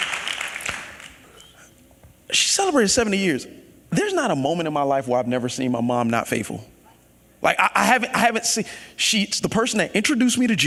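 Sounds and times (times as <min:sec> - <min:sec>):
audience applause: 0:00.0 - 0:01.2
speech: 0:02.3 - 0:06.7, 0:07.4 - 0:10.6.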